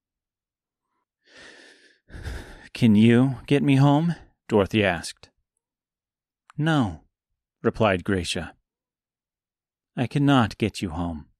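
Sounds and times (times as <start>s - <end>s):
heavy angry breathing of a person: 1.2s - 2.7s
speech: 2.8s - 5.3s, 6.6s - 7.0s, 7.6s - 8.6s, 10.0s - 11.3s.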